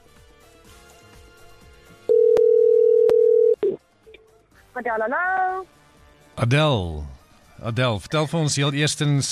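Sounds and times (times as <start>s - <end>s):
telephone ring tone on an outgoing radio call: 2.1s - 3.8s
speech: 4.8s - 5.8s, 6.4s - 9.3s.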